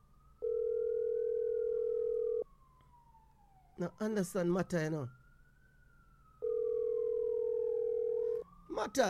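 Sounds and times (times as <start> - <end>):
steady electronic outgoing phone call tone: 0.4 - 2.5, 6.4 - 8.4
speech: 3.8 - 5.2, 8.8 - 9.0.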